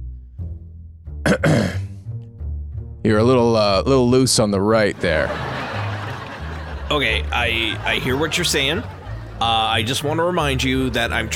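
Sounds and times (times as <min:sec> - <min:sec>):
raspy throat clearing: 0:01.2 - 0:02.0
speech: 0:01.3 - 0:01.8, 0:03.0 - 0:05.6, 0:06.9 - 0:11.3
laughter: 0:04.9 - 0:11.3.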